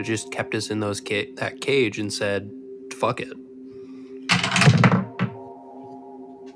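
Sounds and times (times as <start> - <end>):
speech: 0.0 - 3.5
dice tumbling across a tabletop: 4.3 - 5.3.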